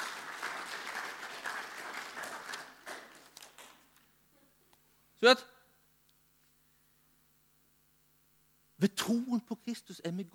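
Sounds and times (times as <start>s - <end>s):
audience applause: 0.0s - 3.9s
speech: 5.2s - 5.6s, 8.8s - 10.3s.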